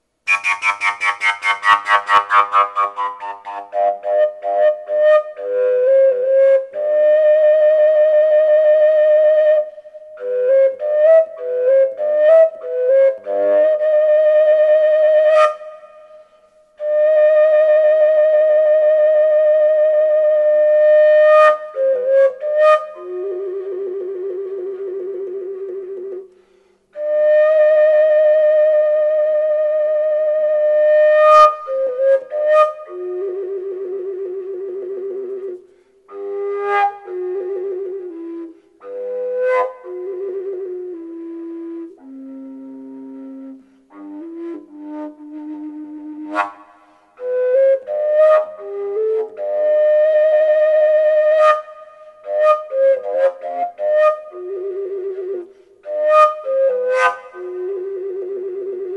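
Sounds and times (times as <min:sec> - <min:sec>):
Slovak folk fujara flute: 0:00.0 - 0:58.9.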